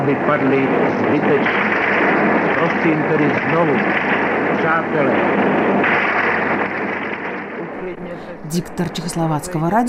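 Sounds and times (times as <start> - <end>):
speech: 0.1 - 6.1, 8.4 - 9.8
gunfire with rapid shots on an old radio recording: 1.3 - 7.7.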